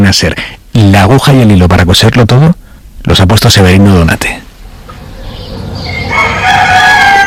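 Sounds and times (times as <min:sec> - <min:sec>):
low outdoor rumble: 0:00.0 - 0:06.7
speech: 0:00.1 - 0:04.4
fainter roosters crowing: 0:04.7 - 0:07.2
rooster crowing: 0:05.1 - 0:07.2.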